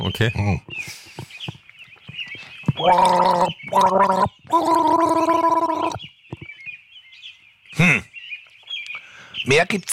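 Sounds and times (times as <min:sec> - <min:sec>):
speech: 0:00.0 - 0:01.0, 0:02.8 - 0:06.0, 0:09.5 - 0:09.9
person gargling a short tune: 0:02.8 - 0:06.0.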